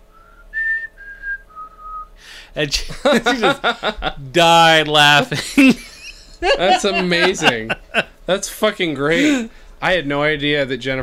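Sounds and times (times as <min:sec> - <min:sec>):
person whistling a tune in a store: 0:00.1 - 0:02.1
speech: 0:02.4 - 0:11.0
laughter: 0:02.7 - 0:08.2.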